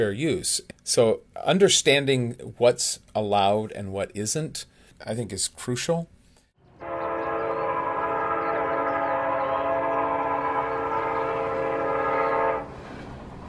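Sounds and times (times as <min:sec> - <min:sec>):
speech: 0:00.0 - 0:06.2
loud steady train horn blaring: 0:06.7 - 0:12.8.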